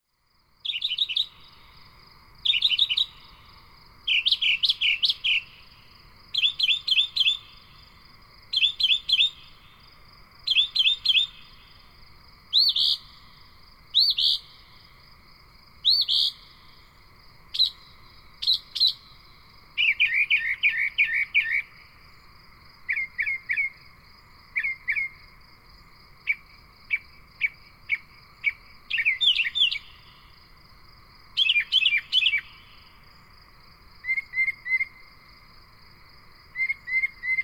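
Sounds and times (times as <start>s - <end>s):
mocker crickets chirping: 0.0s - 37.4s.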